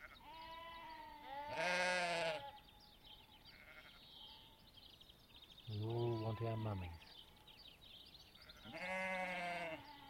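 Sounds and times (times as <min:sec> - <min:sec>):
lamb bleating on a farm during lambing season: 0:00.0 - 0:02.5, 0:03.5 - 0:04.0, 0:08.4 - 0:10.0
speech: 0:06.4 - 0:07.2.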